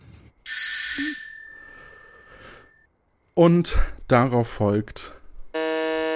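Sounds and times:
doorbell ringing: 0.5 - 2.4
speech: 3.4 - 5.2.

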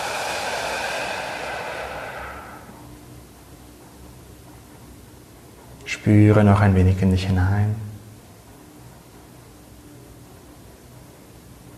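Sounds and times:
long exhalation during a guided group meditation: 0.0 - 2.9
speech: 6.0 - 7.9.

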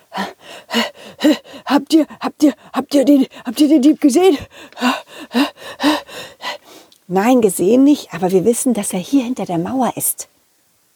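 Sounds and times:
heavy rapid panting: 0.0 - 6.9
speech: 0.7 - 6.0, 7.1 - 10.4.

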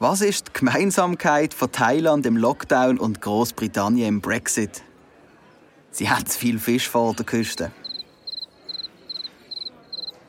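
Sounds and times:
speech: 0.0 - 4.9, 6.0 - 7.8
cricket chirping in quick high trills: 7.8 - 10.2.

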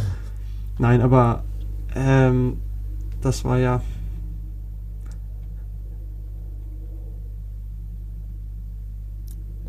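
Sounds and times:
heavy low droning rumble: 0.0 - 9.6
speech: 0.8 - 2.6, 3.2 - 4.0.

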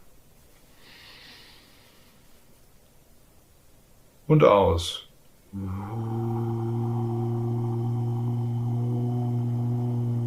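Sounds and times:
low steady hiss: 0.0 - 10.2
deep breath drawn in during a breathing exercise: 0.8 - 2.3
speech: 4.3 - 6.4.

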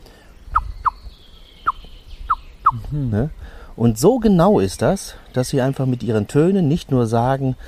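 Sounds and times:
blackbird alarm calls warning of a cat: 0.1 - 3.7
speech: 2.9 - 7.6.

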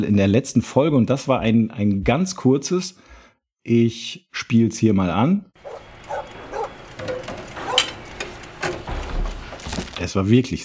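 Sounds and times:
speech: 0.0 - 5.9, 10.1 - 10.6
dog barking: 5.6 - 6.8, 7.6 - 7.9.

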